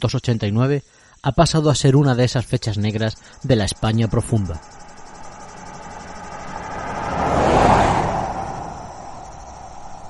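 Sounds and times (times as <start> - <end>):
speech: 0.0 - 4.8
car speeding along country road: 4.6 - 10.0.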